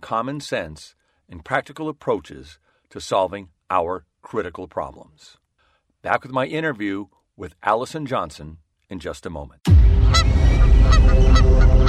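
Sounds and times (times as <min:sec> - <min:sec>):
speech: 0:00.1 - 0:05.4, 0:06.0 - 0:11.7
steady low rumble: 0:09.7 - 0:11.8
geese honking: 0:10.0 - 0:11.8.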